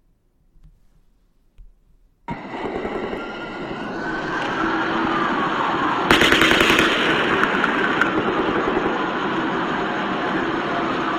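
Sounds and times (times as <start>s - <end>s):
heavy noise: 0.0s - 11.0s
distant automatic gunfire: 2.3s - 5.2s, 6.1s - 9.8s.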